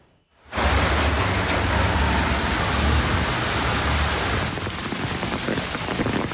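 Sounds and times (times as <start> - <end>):
heavy afternoon rain downpour in Ankara Turkey: 0.4 - 6.3.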